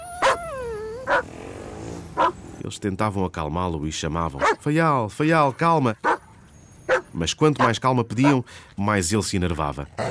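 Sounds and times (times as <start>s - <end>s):
dog whining: 0.0s - 2.4s
dog barking: 0.2s - 1.3s, 2.2s - 2.4s, 4.4s - 4.7s, 6.0s - 6.2s, 6.9s - 8.4s
speech: 2.7s - 6.1s, 7.2s - 10.0s.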